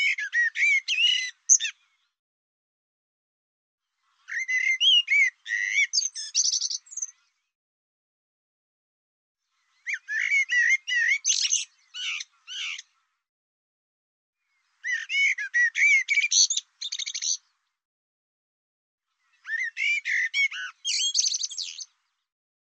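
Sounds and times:
bird song: 0.0s - 2.2s, 3.8s - 7.6s, 9.4s - 13.3s, 14.4s - 17.8s, 19.1s - 22.3s.

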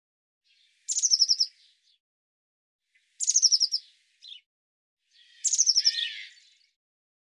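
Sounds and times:
Eurasian blue tit uttering high fast falling trills: 0.8s - 1.6s, 3.2s - 4.4s, 5.2s - 6.6s.

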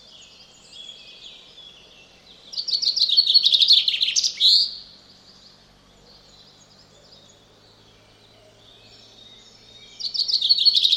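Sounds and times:
common chaffinch song: 0.0s - 10.9s.

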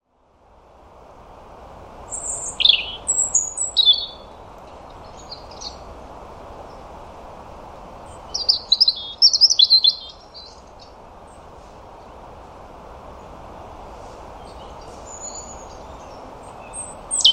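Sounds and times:
low background hiss: 0.0s - 17.3s
European robin singing twittering phrases and trills: 2.1s - 5.9s, 8.0s - 11.5s, 14.4s - 17.3s.

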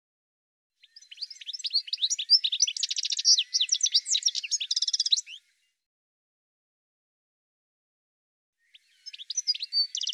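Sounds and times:
bird song: 0.8s - 5.9s, 8.6s - 10.1s.

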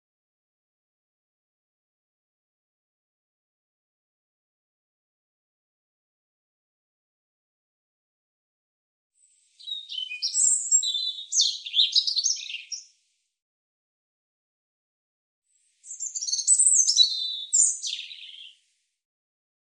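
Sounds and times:
European robin song: 9.2s - 13.0s, 15.5s - 18.8s.

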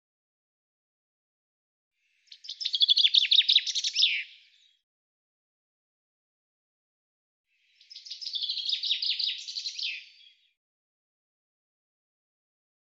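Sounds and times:
common chaffinch song: 2.1s - 4.8s, 7.6s - 10.6s.

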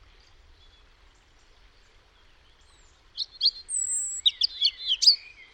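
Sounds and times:
European robin singing: 3.2s - 5.4s.

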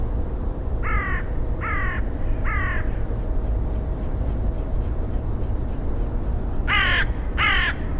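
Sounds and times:
constant low rumble: 0.0s - 7.4s
bird giving harsh nasal calls: 1.7s - 7.8s.

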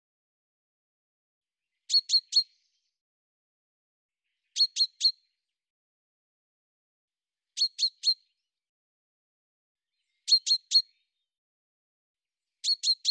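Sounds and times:
bird chirping: 1.6s - 3.0s, 4.1s - 5.6s, 7.5s - 8.5s, 9.9s - 11.3s, 12.4s - 13.0s.

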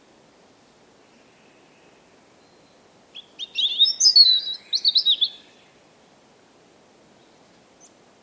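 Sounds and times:
European robin singing: 1.1s - 5.8s.

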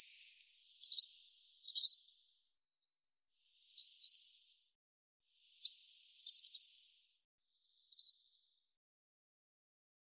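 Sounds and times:
barn swallow chirping calls: 0.0s - 4.6s, 5.4s - 8.5s.

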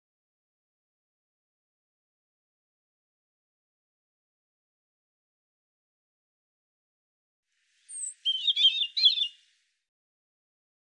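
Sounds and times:
European robin singing: 7.9s - 9.5s.

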